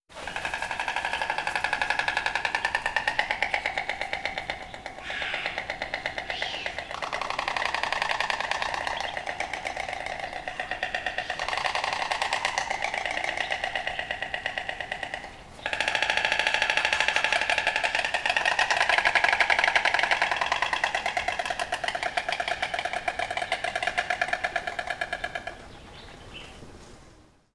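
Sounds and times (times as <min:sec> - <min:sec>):
storks: 0:00.1 - 0:26.4.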